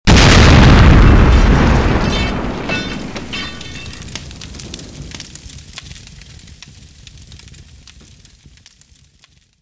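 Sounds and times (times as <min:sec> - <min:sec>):
fuel explosion: 0:00.1 - 0:07.7.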